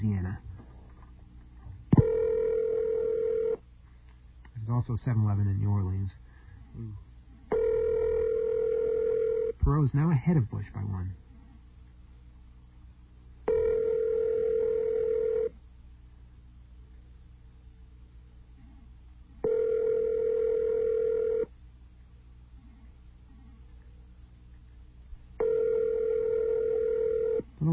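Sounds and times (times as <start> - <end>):
telephone ringing through a telephone connection: 2.0 - 3.6, 7.5 - 9.6, 13.5 - 15.5, 19.4 - 21.5, 25.4 - 27.5
speech: 4.8 - 7.1, 9.6 - 11.2.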